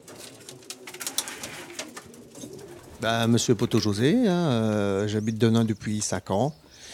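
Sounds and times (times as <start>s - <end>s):
pigeons cooing in a pigeon loft: 0.0s - 5.9s
speech: 3.0s - 6.7s.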